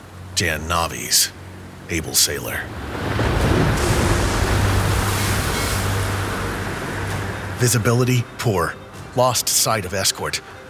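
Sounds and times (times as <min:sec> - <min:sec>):
speech: 0:00.4 - 0:04.0, 0:07.6 - 0:10.6
ocean surf crashing: 0:00.9 - 0:09.4
strong wind roaring: 0:02.6 - 0:07.7
low rumbling undertone: 0:02.7 - 0:07.7.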